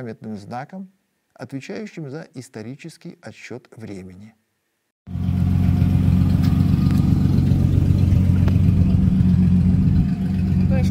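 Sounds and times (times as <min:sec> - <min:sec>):
speech: 0:00.0 - 0:04.4
large American car engine rumbling at a car exhibition on a town's main square: 0:05.1 - 0:10.8.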